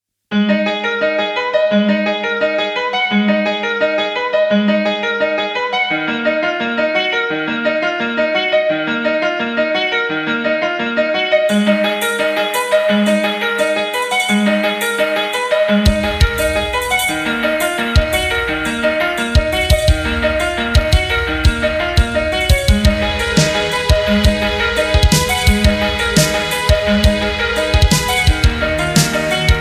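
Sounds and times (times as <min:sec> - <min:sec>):
resonant piano loop: 0:00.3 - 0:29.6
drums: 0:15.9 - 0:29.6.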